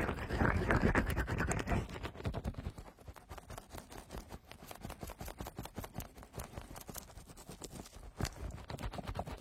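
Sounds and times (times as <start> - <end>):
fast fluffy rubbing over the ears: 0.2 - 9.3.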